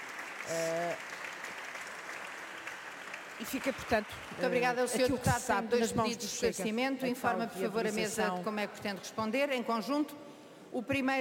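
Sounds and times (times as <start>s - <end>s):
standing applause from a parliamentary bench: 0.0s - 5.2s
speech: 0.5s - 1.2s, 3.4s - 11.1s.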